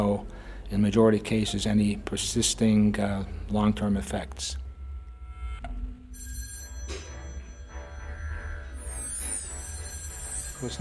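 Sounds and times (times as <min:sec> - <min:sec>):
speech: 0:00.0 - 0:04.6
steady low hum: 0:00.0 - 0:10.7
telephone bell ringing: 0:06.1 - 0:10.7.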